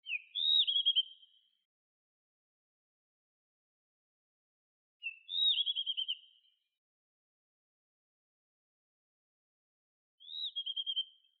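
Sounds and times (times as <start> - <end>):
blue rock thrush singing: 0.0 - 1.4, 5.0 - 6.5, 10.2 - 11.3.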